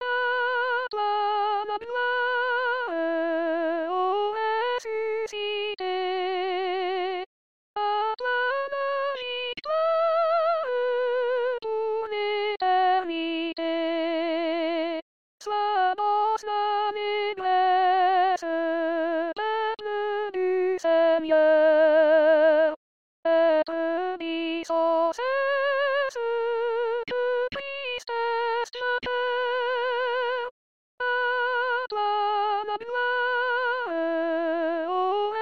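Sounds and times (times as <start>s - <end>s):
soprano singing: 0.0s - 35.4s.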